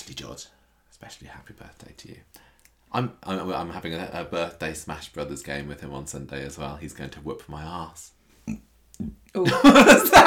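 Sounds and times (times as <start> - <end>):
speech: 0.1 - 10.2
throat noise: 8.4 - 9.2
person burping: 8.5 - 9.1
laughter: 9.4 - 10.2.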